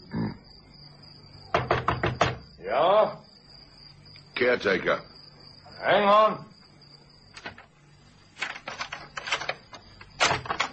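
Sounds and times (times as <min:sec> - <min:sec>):
knocking on the door of a flat: 0:01.5 - 0:02.5
speech: 0:02.6 - 0:03.3, 0:04.4 - 0:05.1, 0:05.8 - 0:06.5.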